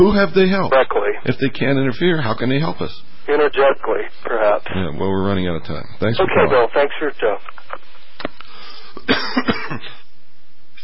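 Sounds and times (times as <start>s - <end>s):
speech: 0.0s - 8.3s, 9.0s - 10.0s
harsh coughing: 9.0s - 10.0s.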